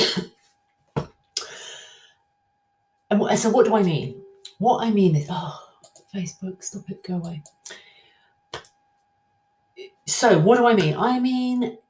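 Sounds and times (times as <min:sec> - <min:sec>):
person coughing: 0:00.0 - 0:00.4
faint steady hum: 0:00.0 - 0:11.8
speech: 0:03.1 - 0:07.6, 0:10.1 - 0:11.8.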